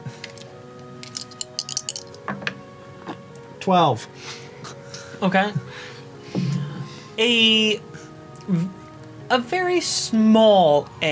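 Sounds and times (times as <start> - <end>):
percentile dice rolling on a hard surface: 0.2 - 2.2
speech: 3.7 - 4.4, 5.2 - 5.9, 7.2 - 7.9, 8.5 - 11.1.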